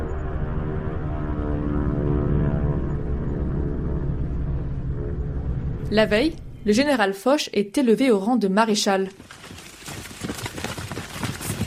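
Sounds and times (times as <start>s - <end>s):
propeller aircraft engines droning overhead: 0.0s - 7.1s
speech: 5.9s - 9.4s.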